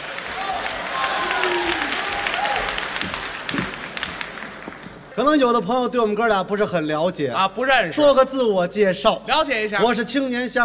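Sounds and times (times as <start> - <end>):
live audience applauding to welcome performers onto a stage: 0.0 - 5.1
speech: 5.2 - 10.6.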